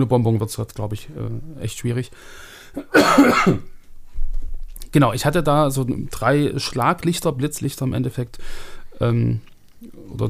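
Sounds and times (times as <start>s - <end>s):
speech: 0.0s - 3.7s, 4.9s - 10.2s
harsh coughing fit: 2.8s - 3.8s.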